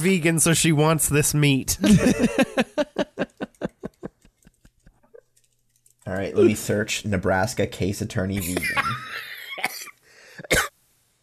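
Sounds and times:
speech: 0.0s - 2.9s, 6.1s - 9.0s
laughter: 1.8s - 4.2s, 8.4s - 9.4s
harsh coughs: 9.6s - 10.7s.

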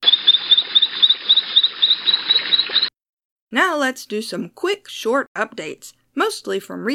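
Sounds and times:
frog chirping: 0.0s - 2.9s
speech: 3.5s - 6.9s.

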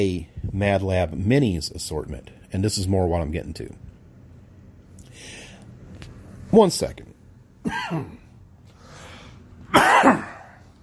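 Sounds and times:
speech: 0.0s - 3.9s, 6.5s - 8.2s, 9.7s - 10.3s
person coughing: 7.6s - 8.3s, 9.7s - 10.6s.

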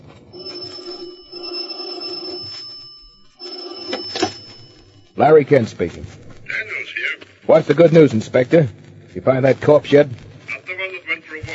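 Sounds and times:
old-fashioned telephone bell ringing: 0.2s - 5.6s
speech: 5.2s - 6.2s, 7.5s - 10.2s.

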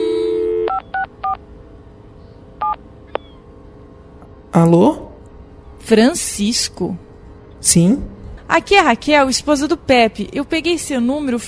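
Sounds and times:
telephone dial tone: 0.0s - 1.4s
speech: 4.6s - 5.0s, 5.8s - 7.0s, 7.6s - 11.4s.

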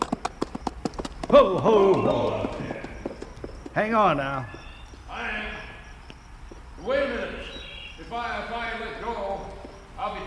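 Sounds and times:
horse hooves clip-clopping: 0.0s - 5.2s, 6.0s - 6.8s, 9.1s - 10.2s
speech: 1.3s - 2.7s, 3.8s - 4.6s, 6.8s - 7.5s.

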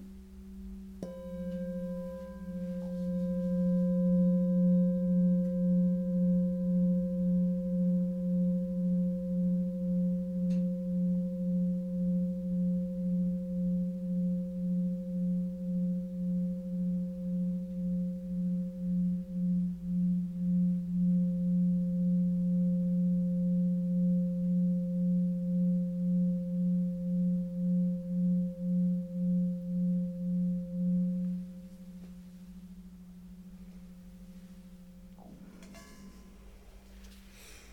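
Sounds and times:
singing bowl struck and ringing during a guided meditation: 1.0s - 37.7s.

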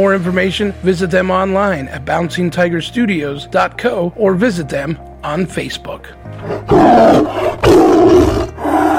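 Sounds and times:
speech: 0.0s - 7.7s
tiger roaring and growling: 6.4s - 8.9s.

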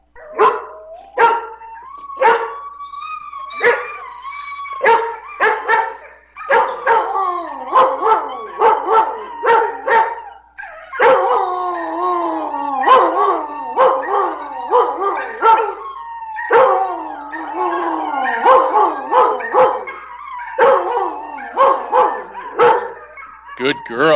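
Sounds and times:
female dog howling and whining: 0.0s - 24.1s
female dog barking: 0.3s - 1.6s, 2.2s - 2.6s, 3.6s - 4.0s, 4.8s - 7.1s, 7.7s - 10.2s, 11.0s - 11.4s, 18.4s - 20.0s, 20.6s - 24.1s.

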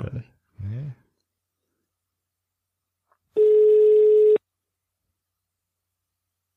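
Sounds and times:
telephone ringing tone of a call to a mobile phone: 3.4s - 4.4s.

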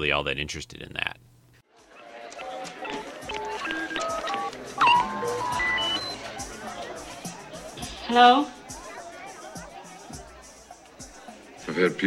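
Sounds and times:
speech: 0.0s - 1.2s, 8.1s - 8.6s, 11.8s - 12.0s
crowd chatter and murmur in a bar: 1.7s - 12.0s
video phone call dialing beeps: 2.8s - 6.3s.

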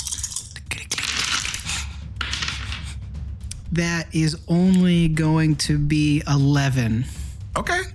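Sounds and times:
dice rolling: 0.0s - 3.0s
speech: 3.7s - 7.9s.

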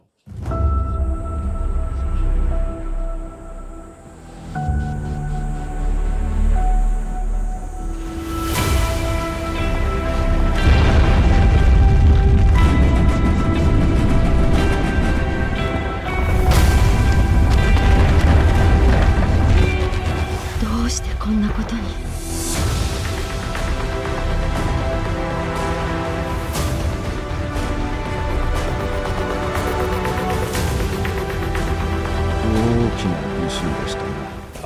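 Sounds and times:
dramatic game trailer music: 0.0s - 34.6s
deep heavy earthquake rumble in a game trailer: 9.2s - 32.4s.

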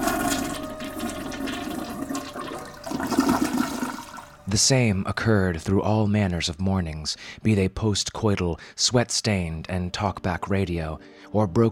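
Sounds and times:
toilet flushing and tank refilling: 0.0s - 4.5s
speech: 4.5s - 11.7s.

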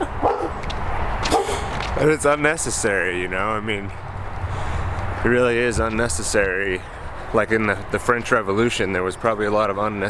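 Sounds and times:
dog barking: 0.2s - 0.6s, 1.3s - 1.7s
speech: 2.0s - 4.1s, 5.2s - 10.0s.

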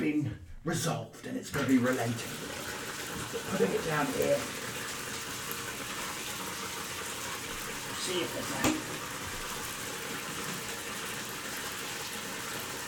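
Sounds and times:
speech: 0.3s - 4.6s, 8.1s - 9.1s
water pouring into a bathtub: 1.4s - 12.8s
clunk or splash: 8.6s - 9.0s.

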